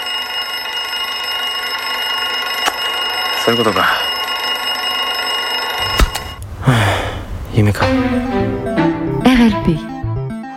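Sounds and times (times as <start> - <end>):
alarm clock ringing: 0.0 - 6.4
speech: 3.5 - 4.1, 7.6 - 9.9.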